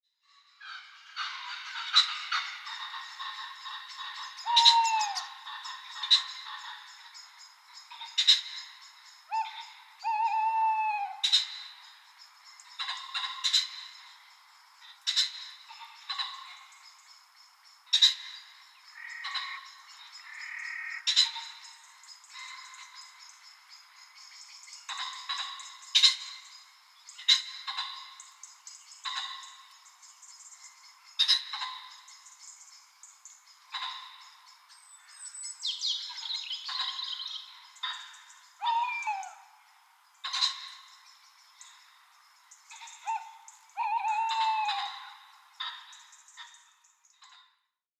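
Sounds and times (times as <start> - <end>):
pheasants calling: 0.6 - 47.6
owls hooting: 4.4 - 5.4, 9.3 - 11.4, 37.8 - 39.5, 42.7 - 45.2.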